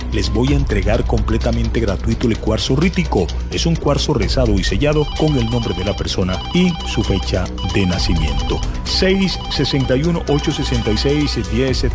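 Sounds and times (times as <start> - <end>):
speech: 0.1 - 11.9
telephone ringing with an incoming call during a phone-in: 4.9 - 11.7.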